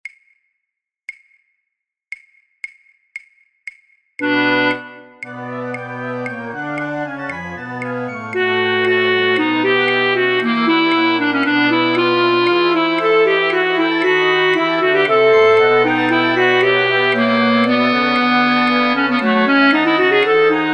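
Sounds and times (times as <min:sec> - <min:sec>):
alto flute in a flute orchestra: 0:04.2 - 0:20.7.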